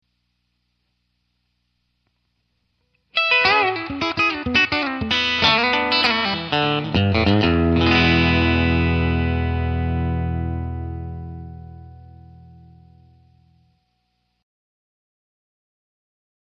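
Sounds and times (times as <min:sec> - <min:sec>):
country guitars: 0:03.1 - 0:13.3.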